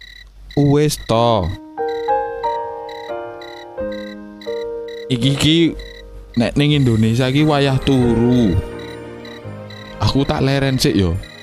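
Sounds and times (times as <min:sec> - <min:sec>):
speech: 0:00.6 - 0:01.6, 0:05.1 - 0:08.7, 0:10.0 - 0:11.3
phone ringtone playing a bright electronic melody of chiming notes: 0:01.2 - 0:11.4.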